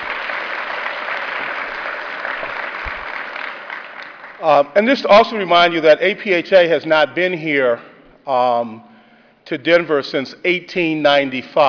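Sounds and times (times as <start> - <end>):
room full of people applauding: 0.0 - 4.6
speech: 4.4 - 8.9, 9.5 - 11.6.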